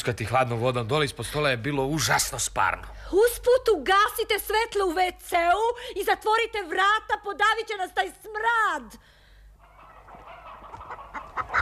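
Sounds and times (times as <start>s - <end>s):
speech: 0.0s - 9.2s
agitated chickens clucking and squawking under a hood: 9.5s - 11.6s.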